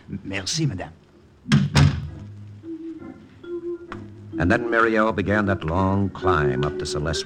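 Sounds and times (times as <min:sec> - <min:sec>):
speech: 0:00.1 - 0:01.7, 0:02.8 - 0:07.2
door at the servants' entrance of a large house south of Paris shutting: 0:01.5 - 0:02.2.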